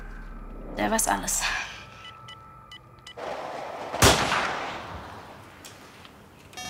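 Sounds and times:
speech: 0.8 - 1.6
rifle shot from a poorly zeroed hunting rifle aimed at a wild boar: 3.2 - 5.4.

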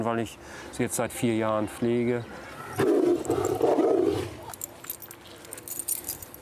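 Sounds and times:
speech: 0.0 - 3.7
tiger roaring over food at feeding time: 2.5 - 4.6
faint metallic clinks: 4.5 - 6.4.

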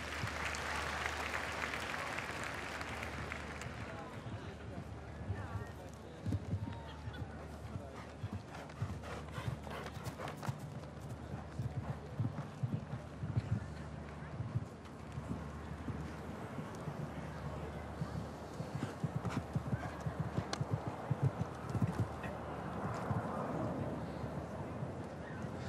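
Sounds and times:
bustle: 0.0 - 25.6
wind: 0.0 - 25.6
horse hooves trotting: 5.3 - 23.7.

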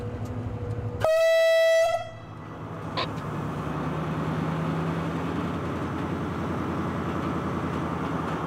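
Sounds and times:
shunting train moving off slowly at walking pace: 0.0 - 8.4
shunting train horn blast: 1.0 - 2.2.

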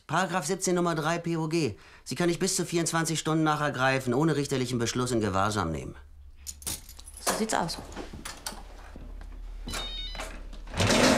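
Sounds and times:
speech: 0.1 - 6.8, 7.4 - 8.0
low steady hum: 1.8 - 10.8
mobile phone ringing: 9.6 - 10.4.

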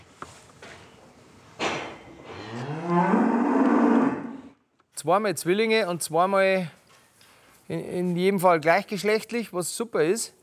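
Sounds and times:
calf mooing in a barn: 2.4 - 4.4
speech: 5.0 - 6.8, 7.7 - 10.4.

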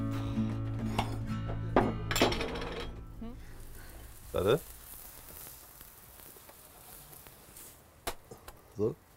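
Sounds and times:
steady low tonal hum: 0.1 - 4.2
glass and metal clinks of a jar of applesauce being opened: 1.0 - 3.0
speech: 4.4 - 4.7, 8.8 - 9.0.

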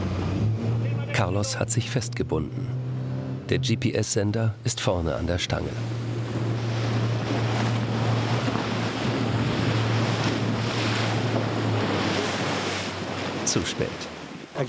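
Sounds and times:
motorboat engine drone at sea: 0.0 - 14.5
water rushing past a speeding motorboat: 0.0 - 14.6
speech: 1.2 - 2.8, 3.5 - 6.1, 13.5 - 14.6
wind buffeting the microphone: 5.8 - 14.6.

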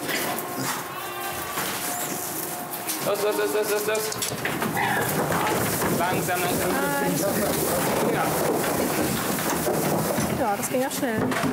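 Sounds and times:
goat bleating on a farm: 0.1 - 4.0
speech: 3.0 - 9.2, 10.4 - 11.5.

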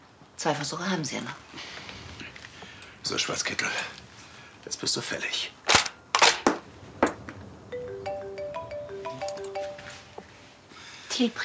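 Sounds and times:
speech: 0.4 - 1.9, 3.1 - 4.0, 4.6 - 5.6, 11.2 - 11.4
telephone ringing with a quick melodic ringtone: 7.7 - 10.2.

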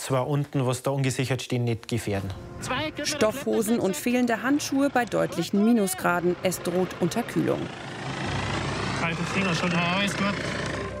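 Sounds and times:
speech: 0.1 - 7.9, 9.1 - 10.8
rescue helicopter flying: 2.3 - 10.9.

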